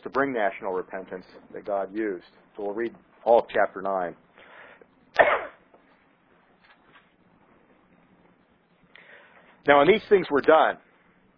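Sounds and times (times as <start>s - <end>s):
speech: 0.1s - 4.3s, 5.2s - 5.5s, 9.6s - 10.8s
person coughing: 5.2s - 5.6s.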